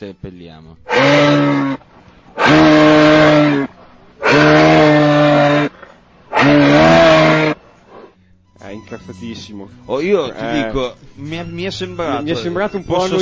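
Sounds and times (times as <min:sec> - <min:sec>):
speech: 0:00.0 - 0:02.7, 0:08.9 - 0:13.2
moose bellowing: 0:00.9 - 0:08.2.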